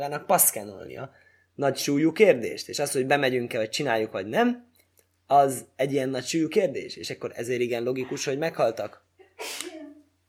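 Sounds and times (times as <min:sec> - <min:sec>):
speech: 0:00.0 - 0:04.7, 0:05.3 - 0:09.8
person sneezing: 0:09.4 - 0:10.0.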